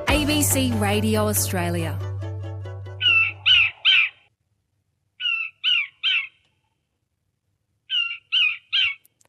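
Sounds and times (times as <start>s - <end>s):
speech: 0.1s - 2.1s
Micronesian kingfisher giving harsh scratchy chirps: 3.0s - 4.3s, 5.2s - 6.4s, 7.9s - 9.1s.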